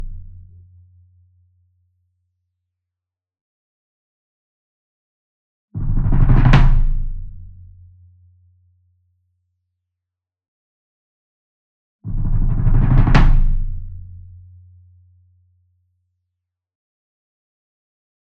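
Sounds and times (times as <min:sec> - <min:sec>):
near marching bass drum roll with soft beater: 0:05.8 - 0:07.4, 0:12.1 - 0:14.0.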